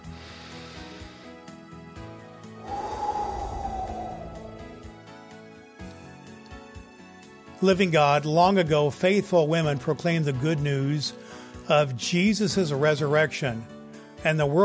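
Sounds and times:
deep breath drawn in during a breath prayer: 0.0 - 1.4, 2.6 - 4.9
music: 0.0 - 14.6
speech: 7.6 - 14.6.

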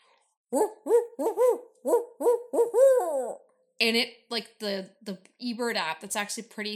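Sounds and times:
speech: 0.5 - 2.0, 3.8 - 6.7
person in the woods imitating barred owl hoots: 0.5 - 3.4.

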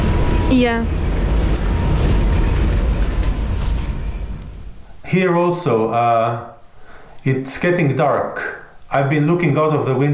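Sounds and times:
old Czechoslovak-built tram rolling along rails in Tallinn in snow: 0.0 - 4.9
speech: 0.5 - 1.0, 5.1 - 6.5, 7.2 - 10.1.

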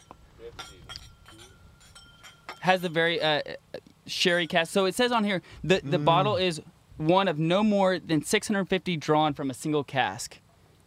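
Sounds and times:
glasses clinking in a toast: 0.0 - 3.3
speech: 2.6 - 10.4.

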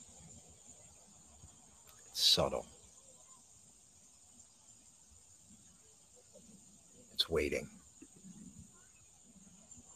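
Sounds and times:
crickets trilling: 0.0 - 9.9
speech: 2.2 - 2.8, 7.3 - 7.8.

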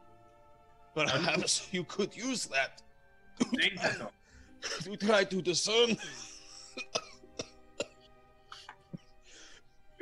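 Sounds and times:
speech: 1.0 - 7.0
person deliberately putting on a cough: 1.1 - 1.6, 3.4 - 4.9, 6.0 - 9.0.

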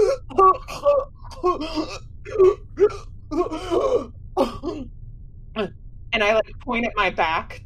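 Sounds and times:
voice imitating choking and coughing up liquid: 0.0 - 4.8
low steady hum: 0.0 - 7.6
speech: 6.8 - 7.6.

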